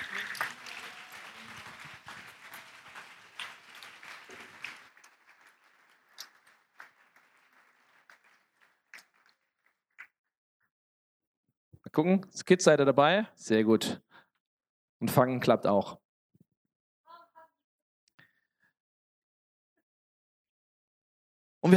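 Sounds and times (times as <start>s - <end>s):
audience applauding: 0.0s - 9.4s
speech: 12.0s - 14.0s, 15.0s - 16.0s.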